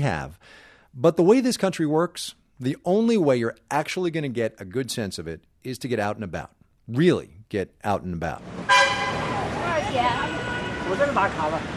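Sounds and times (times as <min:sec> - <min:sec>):
speech: 0:00.0 - 0:08.8, 0:10.0 - 0:11.7
crowded city bus rumbling through traffic in Chongqing China: 0:08.4 - 0:11.7
horn toots from the street: 0:08.7 - 0:11.1
people chattering on a city bus: 0:09.1 - 0:11.7.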